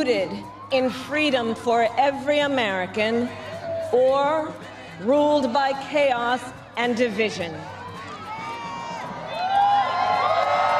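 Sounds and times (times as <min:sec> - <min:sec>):
speech: 0:00.0 - 0:07.7
crowd cheering and whooping: 0:07.7 - 0:10.7
audience applause: 0:09.3 - 0:10.7.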